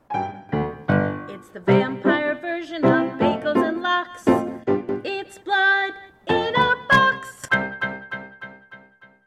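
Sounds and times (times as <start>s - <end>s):
vocals: 0.9s - 7.6s.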